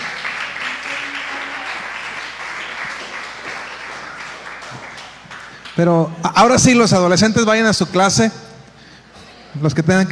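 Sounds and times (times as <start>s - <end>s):
crowd applauding: 0.0s - 6.4s
speech: 5.8s - 8.5s, 9.6s - 10.1s.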